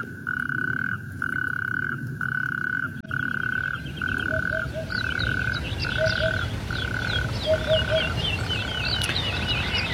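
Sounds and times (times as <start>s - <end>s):
natterjack toads calling in a rattling chorus: 0.0s - 9.9s
small birds chirping: 2.8s - 9.9s.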